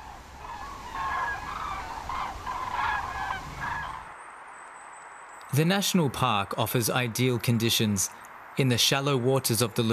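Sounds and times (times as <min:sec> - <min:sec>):
thousands of common cranes calling at the Pramort: 0:00.0 - 0:04.1
speech: 0:05.5 - 0:09.9.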